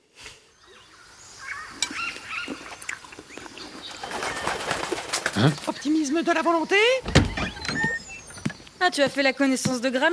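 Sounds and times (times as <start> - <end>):
parrot flapping its wings: 3.9 - 5.8
speech: 5.4 - 7.2, 8.8 - 10.1.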